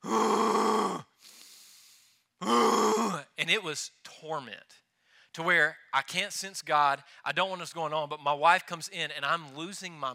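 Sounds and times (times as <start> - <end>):
man imitating laboured breathing from illness: 0.0 - 3.2
speech: 3.4 - 10.1.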